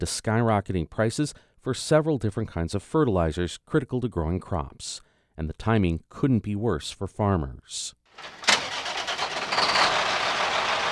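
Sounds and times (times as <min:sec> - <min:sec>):
speech: 0:00.0 - 0:08.5
truck engine idling while parking: 0:08.2 - 0:10.9.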